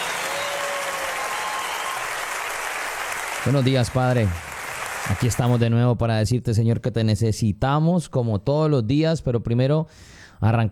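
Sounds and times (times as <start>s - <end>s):
dense audience applause: 0.0s - 5.6s
speech: 3.4s - 4.5s, 5.1s - 10.7s.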